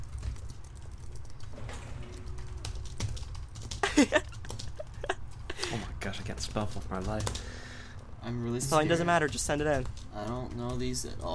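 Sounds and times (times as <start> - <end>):
typing on a computer keyboard: 0.0 - 5.5, 6.2 - 7.7, 9.3 - 11.3
speech: 4.0 - 4.2, 6.1 - 7.6, 8.2 - 11.3.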